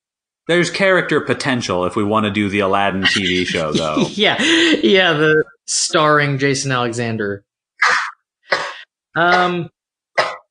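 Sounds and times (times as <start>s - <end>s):
speech: 0.5s - 8.0s, 9.2s - 10.3s
laughter: 2.7s - 5.4s
sharp raspy sneezes: 7.8s - 9.6s, 10.2s - 10.4s.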